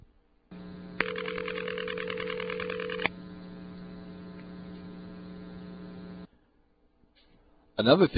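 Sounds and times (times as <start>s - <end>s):
steady low electrical hum: 0.0s - 8.1s
crossbar 5 telephone exchange tone-plant ringback tone in Raleigh North Carolina: 1.0s - 3.1s
click of the ring tone starting and ending: 3.0s - 5.0s
speech: 7.8s - 8.1s.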